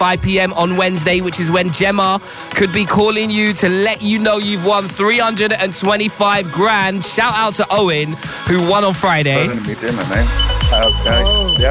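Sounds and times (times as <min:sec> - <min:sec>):
speech: 0:00.0 - 0:11.6
fire alarm steady high-pitched electronic tone as dinner burns: 0:10.2 - 0:11.6.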